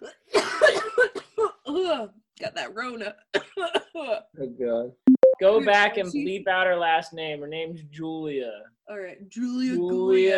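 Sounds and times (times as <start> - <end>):
rough forceful coughs: 0.0 - 1.7
speech: 1.9 - 10.3.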